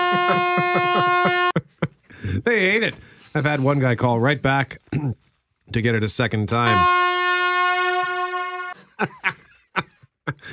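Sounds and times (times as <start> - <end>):
Jamaican air horn blasts: 0.0 - 1.6, 6.6 - 8.9
laughter: 0.0 - 2.1, 8.8 - 10.5
speech: 0.1 - 7.1, 9.0 - 9.4, 10.3 - 10.5.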